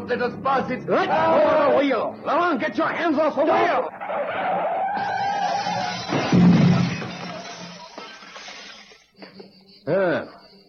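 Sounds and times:
speech: 0.1s - 5.1s, 9.8s - 10.4s
car smashing through a glass mirror: 5.0s - 9.0s.

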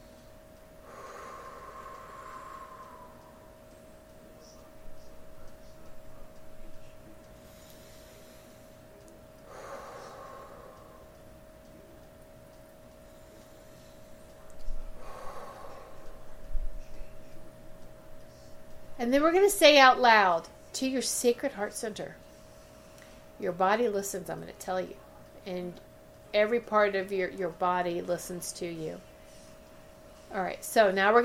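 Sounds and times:
slow deep breathing: 0.0s - 4.1s, 7.3s - 11.3s, 13.0s - 17.4s
faint steady hum: 0.0s - 31.2s
speech: 19.0s - 22.2s, 23.4s - 29.1s, 30.3s - 31.2s.

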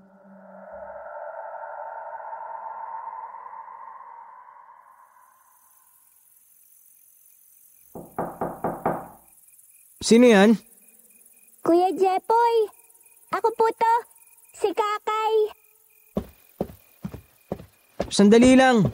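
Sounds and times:
knocking on a door: 8.0s - 9.3s, 16.2s - 18.9s
speech: 10.0s - 10.7s, 12.0s - 15.6s, 18.1s - 18.9s.

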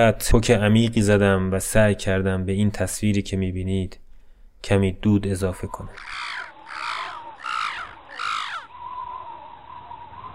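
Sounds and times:
speech: 0.0s - 4.0s, 4.6s - 6.4s
faint steady hum: 0.0s - 10.3s
crow cawing: 5.9s - 10.0s.

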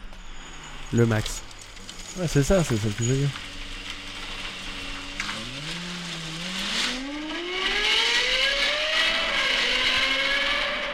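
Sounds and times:
speech: 0.9s - 1.5s, 2.2s - 3.5s
Lexus LFA sports car engine revving with Yamaha-developed exhaust note: 3.4s - 10.9s.

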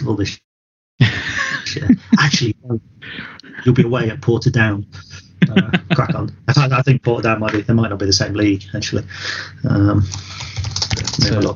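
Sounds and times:
speech: 0.1s - 0.4s, 1.8s - 11.5s
laughter: 1.0s - 2.5s, 4.9s - 6.3s
rapid typing on a computer keyboard: 10.1s - 11.5s.

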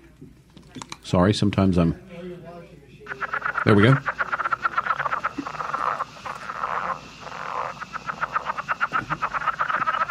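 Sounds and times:
speech: 1.1s - 2.1s, 3.6s - 4.2s
southern leopard frog calling with chuckling pulses and clucks: 3.0s - 10.1s.

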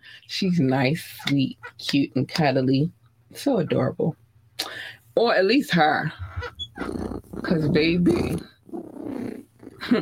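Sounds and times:
speech: 0.3s - 8.5s
person imitating a cat's purr: 6.8s - 9.9s.

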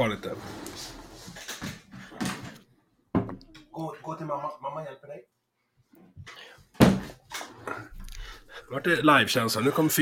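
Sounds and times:
speech: 0.0s - 1.0s, 4.2s - 5.3s, 8.7s - 10.0s
room sounds: 0.0s - 10.0s
knocking on a door: 3.1s - 3.4s.

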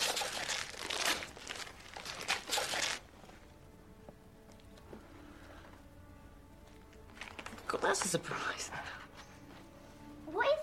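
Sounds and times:
wrapping paper tearing and crinkling as a gift is ripped open: 0.0s - 3.1s, 7.0s - 7.8s
speech: 7.8s - 9.1s.

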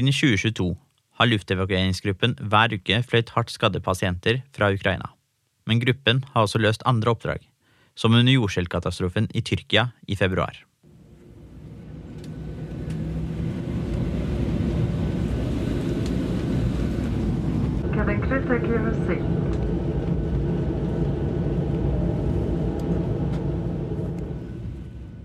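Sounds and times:
speech: 0.0s - 10.7s, 18.2s - 19.6s
jet engines roaring inside the cabin of an SAS airliner converted into an air ambulance: 10.9s - 25.2s.

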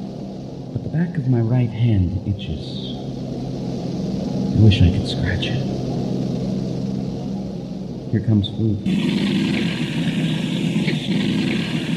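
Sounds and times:
propeller aircraft engines droning with one engine quit: 0.0s - 11.9s
speech: 1.0s - 3.0s, 4.6s - 6.1s, 8.1s - 11.9s.

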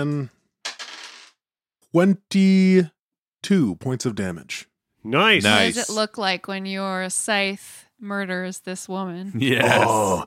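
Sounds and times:
speech: 0.0s - 0.4s, 1.9s - 10.2s
dice clattering across a hard surface: 0.6s - 1.4s
short voiced vocal sounds: 9.4s - 10.2s.

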